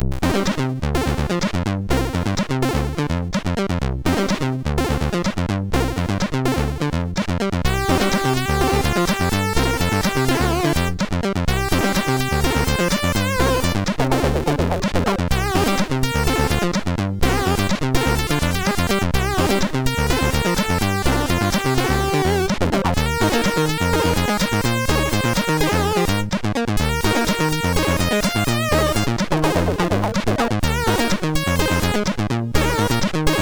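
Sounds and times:
slap funk on a MOS6581R2 sound chip: 0:00.0 - 0:33.4.

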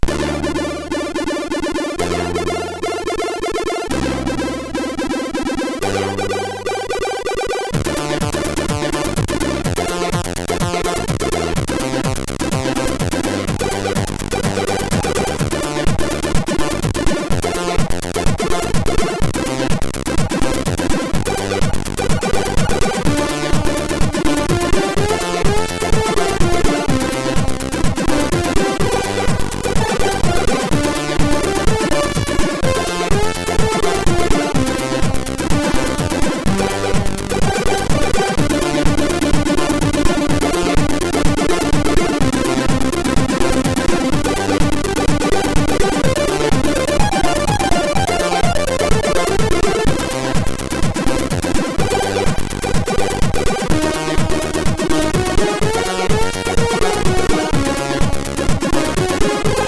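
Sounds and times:
chiptune remix on MOS6581R3 SID chip: 0:00.0 - 0:59.6.

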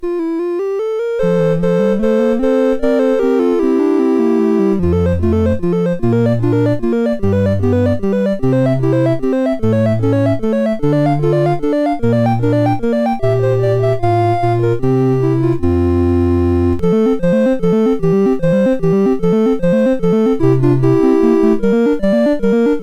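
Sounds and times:
prelude played on MOS6581R2 sound chip: 0:00.0 - 0:22.8.

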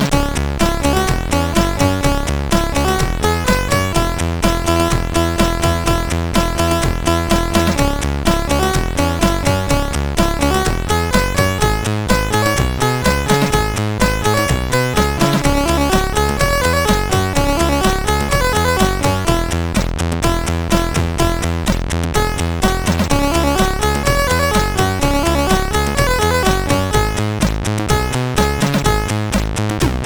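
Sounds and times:
tune on a CSG 8580R5 sound chip: 0:00.1 - 0:29.9.

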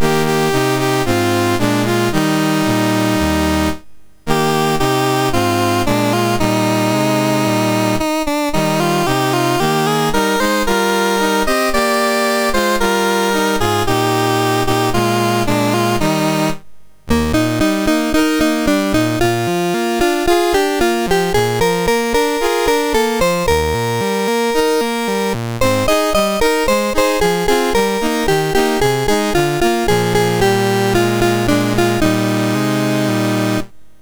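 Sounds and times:
MOS6581R3 chiptune national anthem: 0:00.0 - 0:33.7.

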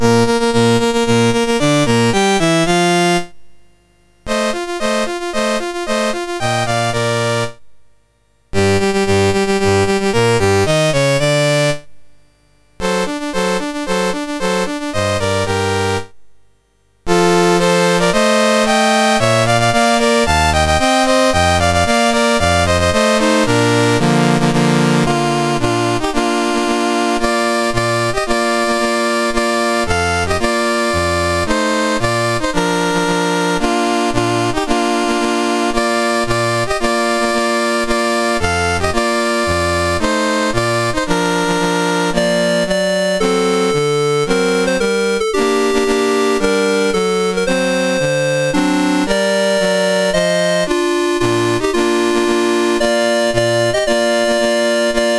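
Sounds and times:
national anthem played on a MOS6581R4 sound chip: 0:00.0 - 0:03.4, 0:04.3 - 0:07.6, 0:08.6 - 0:11.9, 0:12.8 - 0:16.2, 0:17.1 - 0:55.1.

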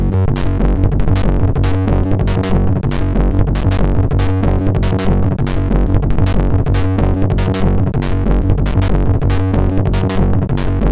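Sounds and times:
heavy phaser sound on a MOS6581 SID chip: 0:00.1 - 0:10.8.

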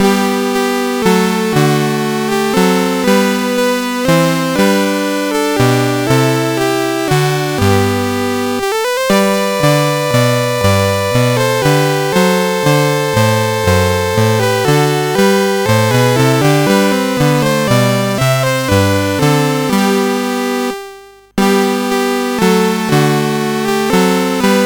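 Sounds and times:
chiptune music on a SID 8580R5 sound chip: 0:00.0 - 0:24.6.

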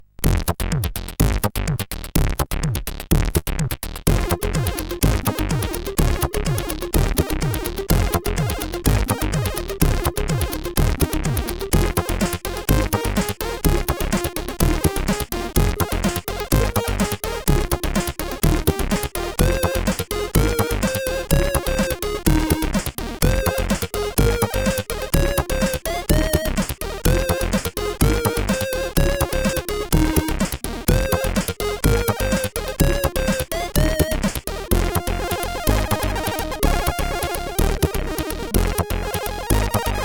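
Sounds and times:
drum machine groove: 0:00.2 - 0:40.0.

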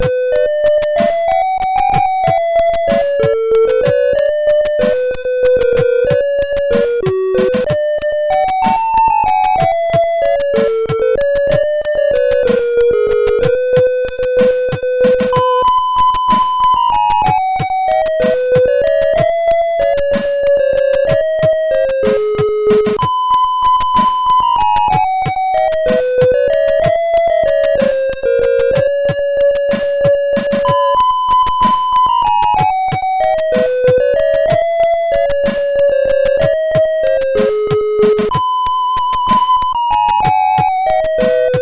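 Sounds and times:
cover song on a sound chip: 0:00.0 - 0:41.5.

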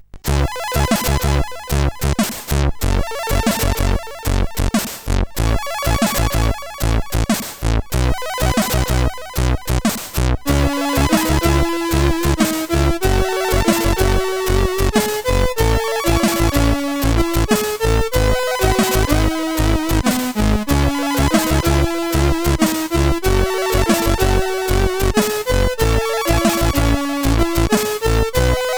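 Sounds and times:
SID CSG8580R5 chip tune: 0:00.3 - 0:28.7.

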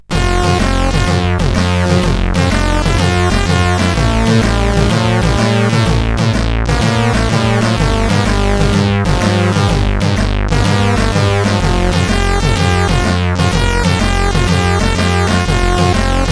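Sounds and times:
beat-driven music intro: 0:00.0 - 0:16.3.

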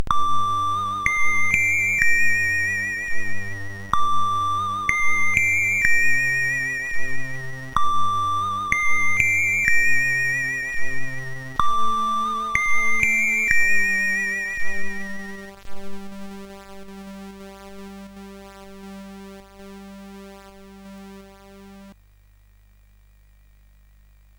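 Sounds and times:
CSG8580R5 synthesizer demo: 0:00.0 - 0:21.8.

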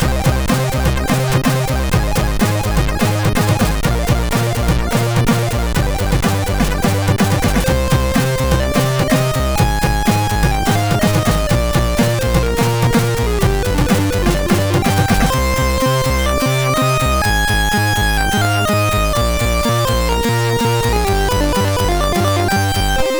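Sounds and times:
intro tune on MOS6581R3 sound chip: 0:00.0 - 0:23.1.

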